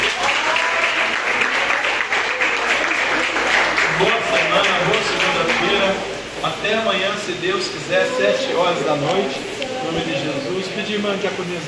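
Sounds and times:
crowd clapping in sustained applause: 0.0s - 6.1s
speech: 6.6s - 11.6s.

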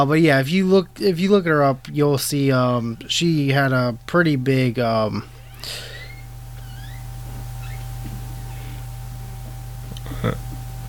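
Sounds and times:
speech: 0.0s - 5.9s
steady low electrical hum: 0.0s - 10.8s
door hinge squeaking in the background: 5.3s - 8.8s.

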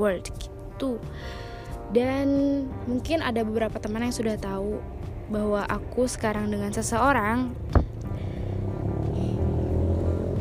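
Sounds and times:
speech: 0.0s - 7.8s
motorcycle engine rumbling as it passes: 5.7s - 10.3s.

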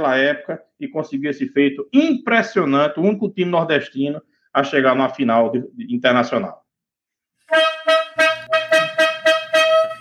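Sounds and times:
speech: 0.0s - 6.6s
horn blasts: 7.5s - 9.9s.

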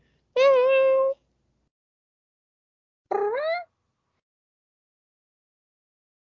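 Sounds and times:
kittens in a box meowing: 3.1s - 3.7s.

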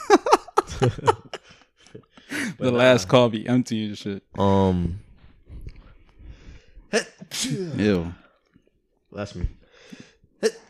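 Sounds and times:
laughter: 0.0s - 2.1s
speech: 0.8s - 1.2s, 2.6s - 5.0s, 6.9s - 8.2s, 9.2s - 10.6s
person sneezing: 7.2s - 7.8s.

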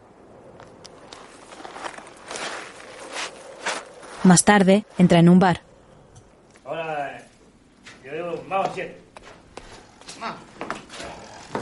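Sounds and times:
steady hiss: 0.0s - 11.6s
man's footsteps walking away: 0.5s - 4.4s, 6.4s - 11.6s
speech: 4.2s - 5.6s.

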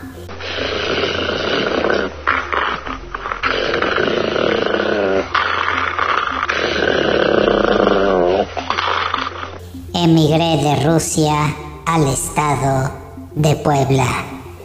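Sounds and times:
dog growling deep and rumbling: 0.3s - 9.6s
speech: 10.3s - 14.2s.

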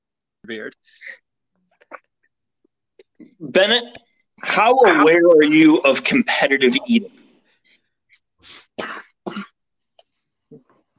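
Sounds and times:
speech: 0.5s - 1.2s, 3.2s - 7.2s, 8.4s - 9.5s
person coughing harshly: 8.6s - 9.6s.

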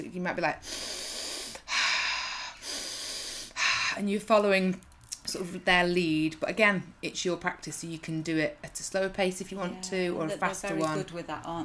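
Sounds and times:
speech: 0.0s - 1.1s, 4.0s - 11.6s
person demonstrating breathing in through the nose: 0.6s - 4.0s.

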